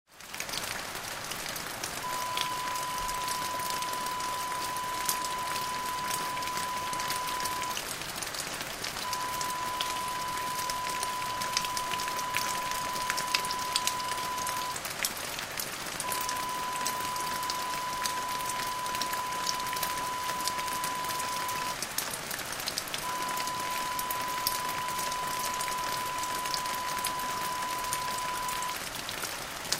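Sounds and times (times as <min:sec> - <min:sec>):
rain from gutter falling on ground: 0:00.1 - 0:29.7.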